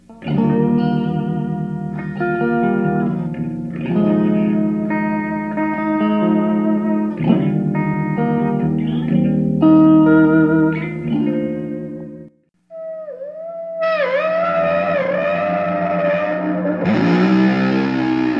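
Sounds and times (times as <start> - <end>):
germanium Fuzz Face replica fuzz pedal distortion: 0.0 - 18.3.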